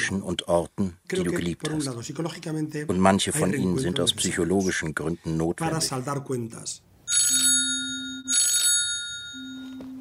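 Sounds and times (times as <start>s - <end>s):
speech: 0.0s - 7.5s
mobile phone ringing with electronic trilling tones in an apartment: 7.1s - 9.9s.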